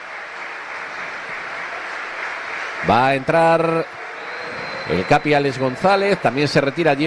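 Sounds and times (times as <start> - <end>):
stadium crowd at a football match applauding a substituted player: 0.0 - 7.0
speech: 2.8 - 4.0, 4.9 - 7.0.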